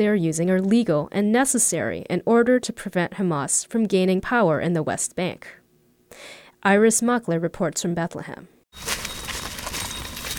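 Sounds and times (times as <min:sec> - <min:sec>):
speech: 0:00.0 - 0:08.9
hooves of a small goat herd clattering along a West Bank village street: 0:08.8 - 0:10.3.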